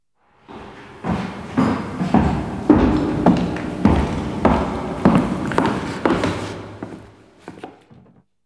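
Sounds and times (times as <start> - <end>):
footsteps walking in a graveyard: 0.5 - 8.2.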